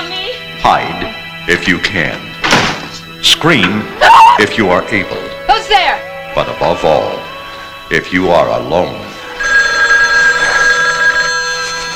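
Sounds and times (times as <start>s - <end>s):
speech: 0.6s - 2.3s, 3.2s - 7.3s, 7.9s - 9.0s
telephone bell ringing: 9.1s - 11.9s.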